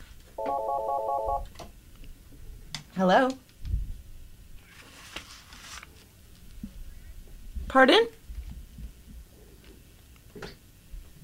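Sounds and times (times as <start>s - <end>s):
electronic telephone ring for an incoming phone call: 0.4s - 1.5s
speech: 0.8s - 1.7s, 3.0s - 3.4s, 7.7s - 8.2s.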